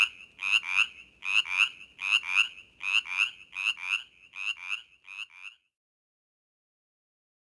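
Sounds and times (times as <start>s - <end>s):
Brimley's chorus frog raspy trills: 0.0s - 5.6s.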